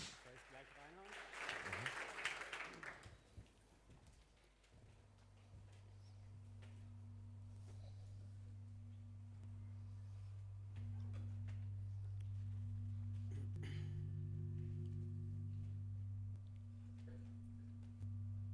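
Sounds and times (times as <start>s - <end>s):
audience applause: 0.0s - 3.4s
steady low electrical hum: 0.0s - 18.5s.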